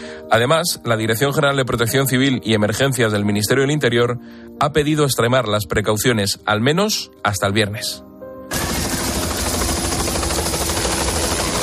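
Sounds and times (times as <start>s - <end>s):
speech: 0.3s - 8.1s
firefighting helicopter flying, rotor and engine roar: 8.5s - 11.6s.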